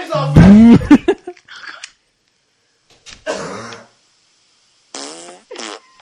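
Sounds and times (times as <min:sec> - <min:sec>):
fart sounds from a video, possibly fake: 0:00.4 - 0:01.0, 0:04.9 - 0:06.0.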